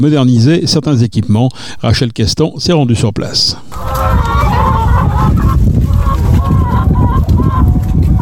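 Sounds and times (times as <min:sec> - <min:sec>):
speech: 0:00.0 - 0:04.5
flock of laying hens clucking at a farm: 0:03.7 - 0:08.2
steady low farmyard rumble: 0:03.7 - 0:08.2.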